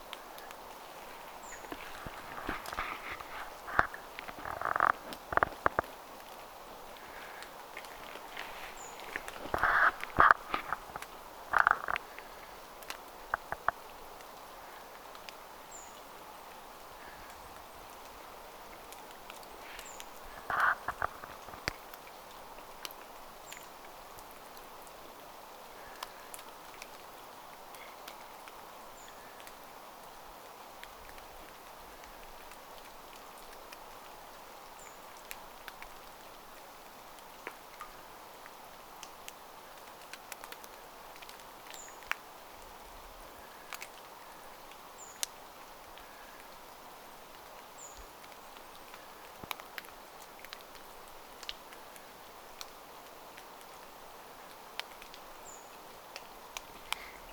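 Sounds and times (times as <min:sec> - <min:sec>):
Eurasian treecreeper calling: 0:00.0 - 0:22.5, 0:40.6 - 0:42.5, 0:43.2 - 0:52.1, 0:53.7 - 0:57.3.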